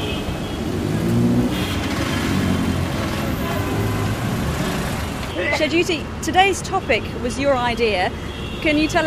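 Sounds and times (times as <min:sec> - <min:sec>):
busy street traffic rumbling in Dhaka Bangladesh: 0:00.0 - 0:09.0
car engine revving: 0:00.7 - 0:05.2
speech: 0:05.6 - 0:09.0.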